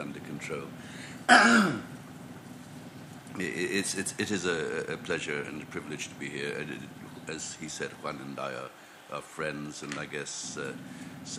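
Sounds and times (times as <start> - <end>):
speech: 0.4 - 1.9, 3.4 - 11.3
harsh throat-clearing cough: 1.3 - 1.9.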